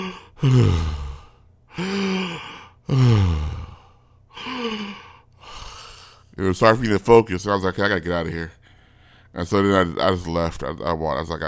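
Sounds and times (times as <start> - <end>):
person imitating heavy labored breathing: 0.0 - 6.3, 8.6 - 9.4
speech: 0.1 - 1.0, 6.4 - 8.6, 9.3 - 11.4.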